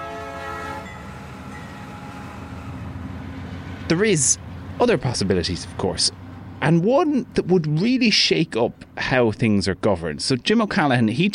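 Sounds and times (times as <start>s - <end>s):
high-speed train horn: 0.0s - 3.0s
high-speed train rushing by with a heavy rumble: 0.0s - 9.9s
speech: 3.9s - 11.3s.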